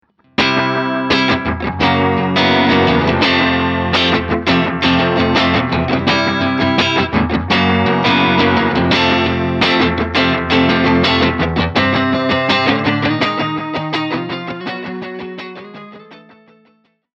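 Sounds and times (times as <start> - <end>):
analog delay pedal effect: 0.4 - 14.0.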